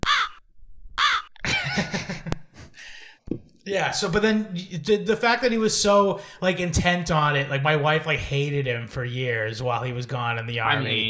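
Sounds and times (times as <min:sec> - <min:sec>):
crows cawing outdoors: 0:00.0 - 0:00.4, 0:01.0 - 0:01.4
laughter: 0:01.4 - 0:02.8
speech: 0:03.7 - 0:11.0.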